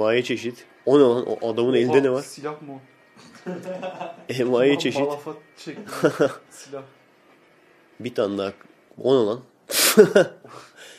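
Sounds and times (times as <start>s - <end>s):
speech: 0.0s - 7.0s, 8.0s - 10.7s
laughter: 3.2s - 4.4s, 5.7s - 6.5s, 9.8s - 10.7s
heavy breathing of a person: 9.7s - 10.9s
short voiced gasps: 10.5s - 10.9s.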